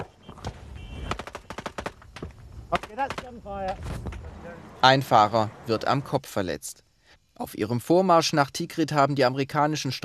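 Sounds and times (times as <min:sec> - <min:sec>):
rapid bursts of gunfire at a checkpoint: 0:00.0 - 0:03.4
speech: 0:03.0 - 0:06.8, 0:07.4 - 0:10.0.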